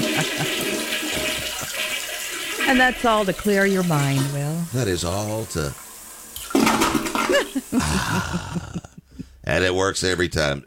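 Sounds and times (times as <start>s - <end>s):
laughter: 0.0s - 1.8s, 7.2s - 9.4s
toilet flushing with gurgling water: 0.0s - 8.4s
speech: 2.7s - 5.8s, 7.7s - 8.7s, 9.5s - 10.6s.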